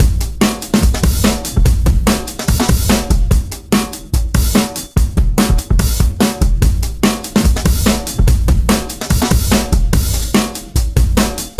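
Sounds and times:
breakbeat drum loop at 145 BPM: 0.0s - 11.5s.

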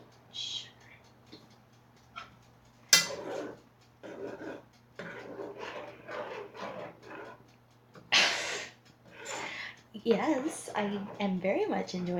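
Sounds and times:
low steady kitchen hum: 0.0s - 12.1s
pot boiling on the stove: 2.1s - 12.1s
sharp metallic clanks: 2.9s - 3.2s
speech: 10.0s - 12.1s.

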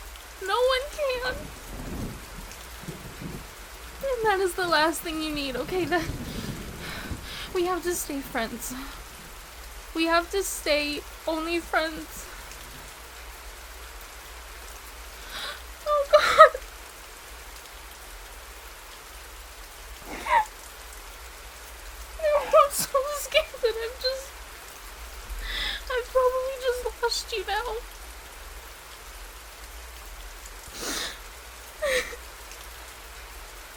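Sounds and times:
steady rain: 0.0s - 33.7s
speech: 0.4s - 1.6s, 4.2s - 6.2s, 7.5s - 9.0s, 10.0s - 12.2s
person gasping and whimpering: 15.3s - 16.5s, 20.0s - 20.5s, 30.8s - 31.2s, 31.8s - 32.2s.

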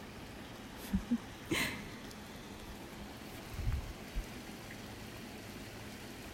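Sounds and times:
steady soft rain: 0.0s - 6.3s
louder taps and drips: 1.8s - 2.8s, 3.4s - 5.7s.

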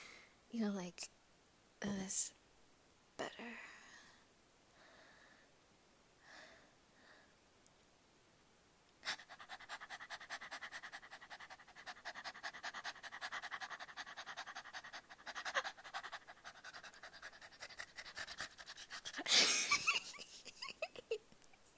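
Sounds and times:
speech: 0.6s - 1.2s, 1.8s - 2.4s
person imitating a dog panting with breathy huffs: 9.0s - 21.1s.

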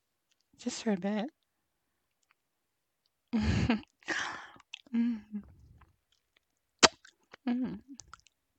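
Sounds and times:
speech: 0.6s - 1.4s, 3.3s - 3.9s, 4.9s - 5.5s
person chewing on something put in the mouth with wet mouth sounds: 3.9s - 4.9s, 5.5s - 8.5s.

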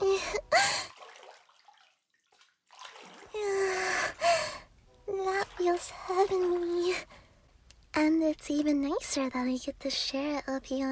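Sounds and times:
water trickling and dripping: 0.0s - 3.9s, 4.9s - 8.5s
water sloshing and splashing in a filled bathtub: 0.0s - 7.3s
speech: 5.8s - 7.2s, 8.0s - 10.9s.

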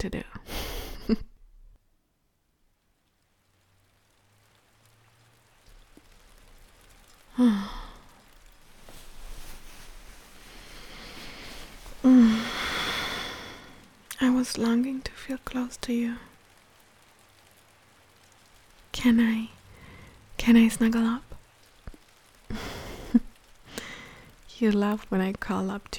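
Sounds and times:
speech: 0.0s - 1.3s, 7.4s - 7.8s, 14.2s - 16.3s, 19.0s - 19.6s, 20.4s - 21.3s, 22.5s - 23.2s, 24.6s - 25.9s
rain pattering against a window: 0.0s - 25.9s
breathy sighs: 7.3s - 8.3s, 10.5s - 13.9s, 22.5s - 24.4s.

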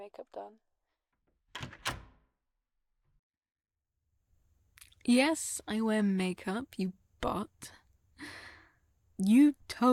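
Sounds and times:
speech: 0.1s - 0.7s, 5.0s - 8.4s, 9.2s - 9.9s
door latch and handle clunks: 1.5s - 2.3s.

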